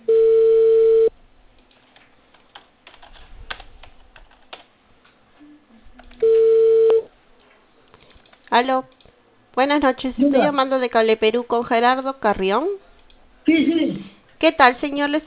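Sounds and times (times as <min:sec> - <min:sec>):
telephone dial tone: 0:00.0 - 0:01.1, 0:06.2 - 0:07.1
speech: 0:08.6 - 0:09.0, 0:09.6 - 0:15.2.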